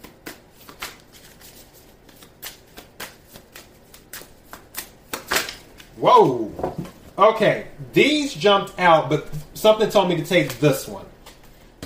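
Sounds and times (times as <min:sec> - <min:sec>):
tarot cards being shuffled by hand: 0:00.0 - 0:06.9, 0:10.2 - 0:11.8
speech: 0:06.0 - 0:11.1.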